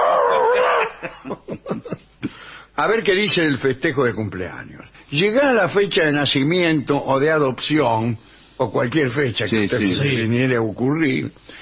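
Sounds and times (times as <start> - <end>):
person imitating a dog howling and barking: 0.0 - 1.0
laughter: 0.6 - 2.1
speech: 2.8 - 11.5.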